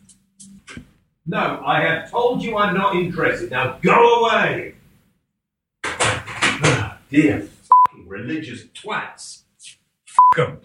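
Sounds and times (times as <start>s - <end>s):
speech: 0.8s - 4.8s, 7.1s - 7.5s, 8.1s - 9.4s, 10.3s - 10.6s
front door rattling as it settles: 5.8s - 6.9s.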